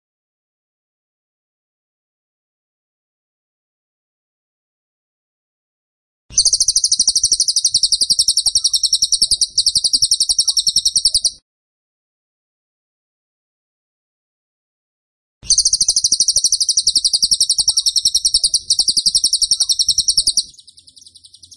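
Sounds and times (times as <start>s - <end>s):
tembakan bird singing a high buzzy trill: 6.3s - 11.4s, 15.5s - 21.5s.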